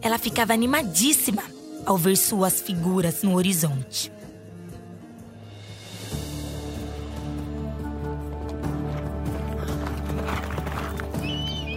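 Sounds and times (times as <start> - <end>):
speech: 0.0 - 4.2
horses trotting with hooves clip-clopping: 7.3 - 11.7.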